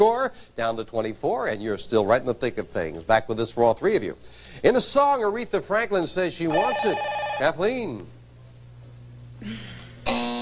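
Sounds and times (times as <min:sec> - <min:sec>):
speech: 0:00.0 - 0:08.2, 0:09.4 - 0:10.2
harsh loud game show contestant buzzer: 0:06.5 - 0:07.8, 0:10.0 - 0:10.4.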